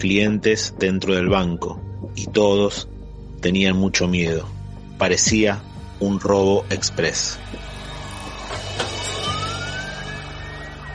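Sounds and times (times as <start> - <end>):
speech: 0.0 - 7.7
police car siren wailing in a rising sweep: 6.6 - 10.9.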